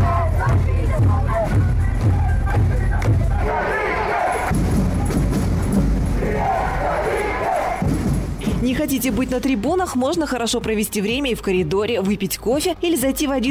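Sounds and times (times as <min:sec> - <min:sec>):
fans chanting slogans in an indoor arena: 0:00.0 - 0:05.4, 0:06.0 - 0:07.9
rhythmic thumps: 0:00.0 - 0:13.4
speech: 0:08.9 - 0:13.4.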